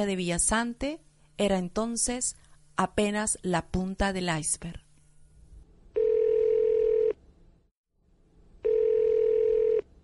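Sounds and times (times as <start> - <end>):
speech: 0.0 - 4.8
faint hum: 0.0 - 10.0
long steady telephone tones: 6.0 - 7.2, 8.6 - 9.9.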